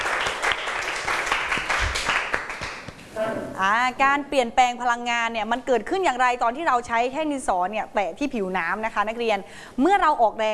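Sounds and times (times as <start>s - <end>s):
group of people clapping in a room: 0.0s - 3.1s
speech: 3.6s - 10.5s.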